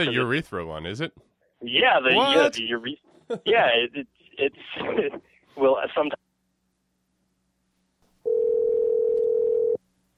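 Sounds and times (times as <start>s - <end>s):
speech: 0.0s - 6.2s
faint low hum: 0.0s - 10.1s
steady loud electronic dial tone: 8.2s - 9.8s.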